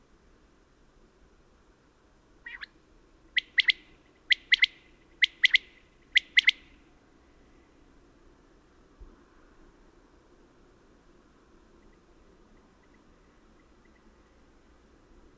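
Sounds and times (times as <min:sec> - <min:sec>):
faint outdoor hiss: 0:00.0 - 0:15.3
common quail singing sharp liquid three-note phrases: 0:02.4 - 0:02.7, 0:03.4 - 0:06.7.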